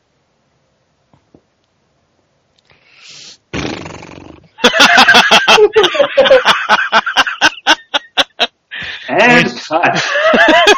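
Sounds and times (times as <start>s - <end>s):
mouth-made fart imitation: 3.4s - 4.6s
laughter: 4.6s - 8.5s, 9.4s - 10.7s.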